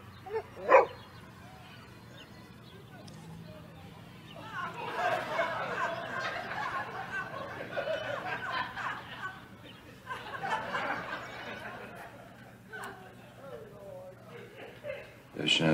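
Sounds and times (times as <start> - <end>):
low murmur of voices: 0.0 - 15.7
dog barking: 0.3 - 1.0
laughter: 1.6 - 15.3
speech: 15.5 - 15.7.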